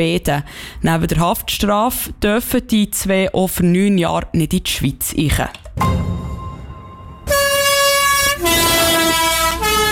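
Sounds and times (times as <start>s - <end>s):
speech: 0.0s - 6.2s
horn of a historic postal bus on a Sunday run between Langnau, Biglen and the Moosegg: 7.2s - 9.9s.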